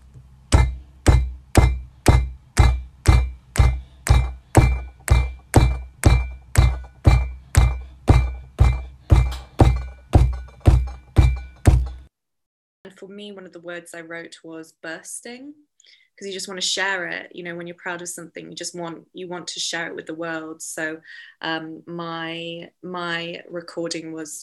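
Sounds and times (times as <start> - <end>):
hands banging on a tabletop as improvised percussion: 0.5 - 12.1
speech: 13.0 - 24.4.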